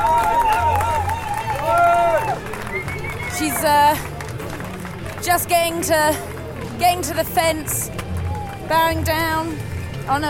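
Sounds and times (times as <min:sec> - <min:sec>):
roadside crowd at a cycling road race cheering and shouting bravo: 0:00.0 - 0:03.9, 0:07.9 - 0:09.0
chatter: 0:02.3 - 0:10.2
speech: 0:03.4 - 0:04.1, 0:05.2 - 0:08.0, 0:08.7 - 0:10.2.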